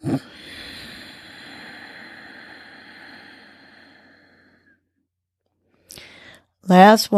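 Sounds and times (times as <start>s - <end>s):
slow breath through the nose with the back of the throat contracted: 0.2s - 4.8s.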